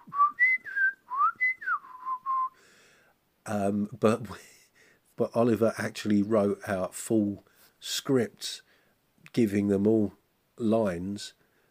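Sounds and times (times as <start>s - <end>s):
penny whistle imitating puppet character speech: 0.0s - 2.6s
speech: 3.4s - 4.5s, 5.2s - 8.7s, 9.3s - 11.4s
person's voice: 3.5s - 4.5s, 5.2s - 8.6s, 9.3s - 11.4s.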